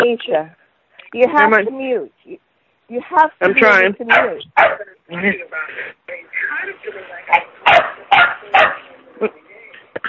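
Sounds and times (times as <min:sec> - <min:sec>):
speech: 0:00.0 - 0:09.4
dog barking through a phone during a group call: 0:04.1 - 0:04.8, 0:07.3 - 0:08.9.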